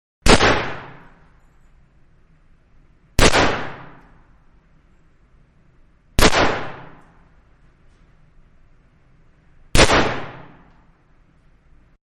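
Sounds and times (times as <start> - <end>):
Magnum 357 revolver gunshots: 0.2 - 1.3, 3.2 - 4.3, 6.2 - 7.2, 9.7 - 10.7.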